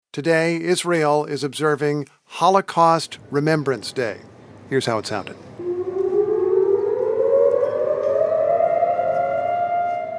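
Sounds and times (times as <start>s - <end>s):
speech: 0.2s - 5.5s
loud sustained civil defense siren wailing: 5.6s - 10.1s.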